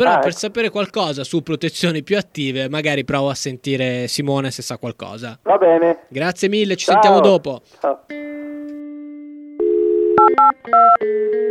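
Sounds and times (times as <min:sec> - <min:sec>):
speech: 0:00.0 - 0:08.3, 0:10.6 - 0:11.4
steady telephone dial tone on a phone line: 0:09.6 - 0:11.4
touch-tone beeps in different pitch pairs: 0:10.1 - 0:11.0.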